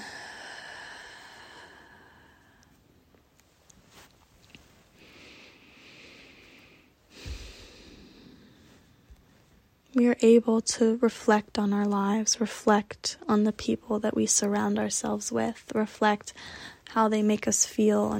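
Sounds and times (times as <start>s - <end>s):
slow breathing in and out during a guided release exercise: 0.0s - 3.0s, 4.9s - 9.8s, 16.3s - 16.9s
speech: 10.0s - 18.1s.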